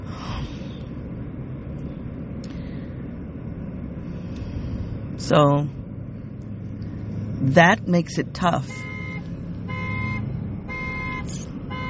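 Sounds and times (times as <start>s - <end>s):
constant low rumble of traffic: 0.0s - 11.8s
speech: 5.2s - 5.8s, 7.4s - 8.9s
car alarm blaring: 8.6s - 11.8s.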